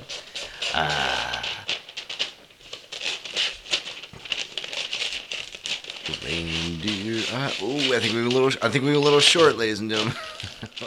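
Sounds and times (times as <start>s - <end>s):
wrapping paper crinkling as it is folded: 0.0s - 10.8s
person's voice: 0.7s - 1.7s, 6.1s - 10.2s
speech: 0.8s - 1.1s, 6.3s - 10.3s.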